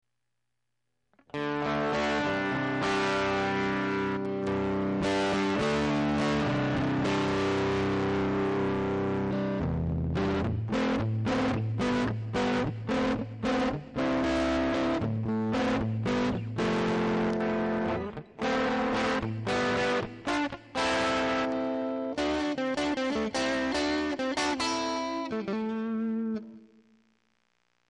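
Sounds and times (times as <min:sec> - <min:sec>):
guitar through a fuzz pedal: 0:01.2 - 0:27.2.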